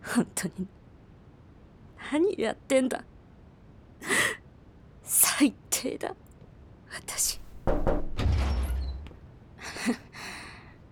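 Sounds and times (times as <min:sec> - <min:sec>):
speech: 0:00.2 - 0:00.8, 0:02.1 - 0:03.1, 0:05.1 - 0:06.2, 0:06.9 - 0:07.4, 0:09.8 - 0:10.1
dull knocks on a door: 0:07.6 - 0:08.4
door sliding or swinging open with a soft rushing scrape: 0:07.7 - 0:09.2.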